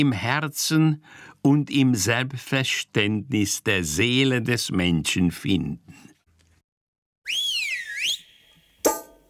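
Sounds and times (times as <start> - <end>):
speech: 0.0 - 6.1
bright swooping whistle in a radio jingle: 7.2 - 9.1.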